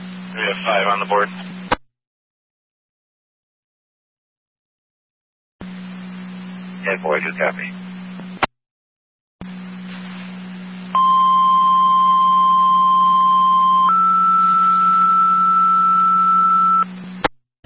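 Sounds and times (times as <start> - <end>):
steady low radio hum: 0.0 - 1.8, 5.6 - 8.5, 9.4 - 17.6
speech: 0.4 - 1.6, 7.0 - 7.9
two-tone dispatch paging tones: 11.0 - 16.8.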